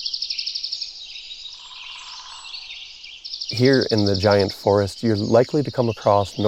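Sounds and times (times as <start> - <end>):
high hissing forest background: 0.0 - 6.4
woodpecker territorial drumming on trees: 1.5 - 6.4
speech: 3.5 - 6.4.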